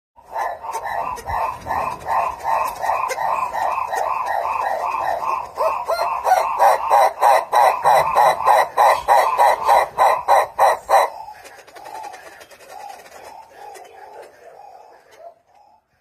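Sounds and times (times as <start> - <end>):
Livingstone's turaco singing: 0.2 - 15.9.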